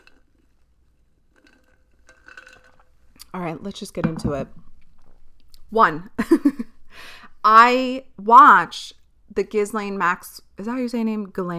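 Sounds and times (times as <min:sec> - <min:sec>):
person sipping coffee from a mug: 0:00.0 - 0:03.3
speech: 0:03.4 - 0:04.7, 0:05.7 - 0:06.7, 0:07.4 - 0:11.5.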